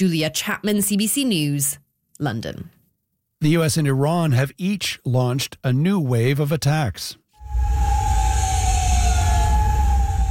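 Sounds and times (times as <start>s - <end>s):
speech: 0.0s - 2.8s, 3.4s - 7.8s
air raid sirens wailing over a city: 7.4s - 10.2s
low steady rumble: 7.4s - 10.2s.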